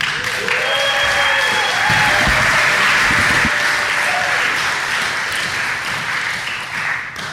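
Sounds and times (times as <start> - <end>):
room full of people applauding: 0.0 - 7.3
whoops and voices: 0.2 - 4.5.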